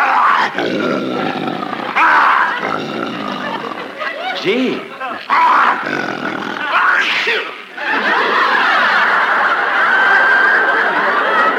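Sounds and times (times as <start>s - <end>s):
lion roaring: 0.0s - 4.0s, 5.3s - 7.1s
speech: 0.4s - 1.8s, 4.4s - 8.4s
laughter: 0.6s - 11.5s.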